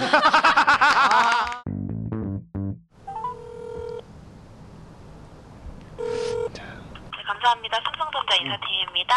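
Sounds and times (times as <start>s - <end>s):
laughter: 0.0s - 1.6s
speech: 0.2s - 0.5s, 7.5s - 9.1s
telephone ringback tones: 3.1s - 4.0s, 6.0s - 6.6s.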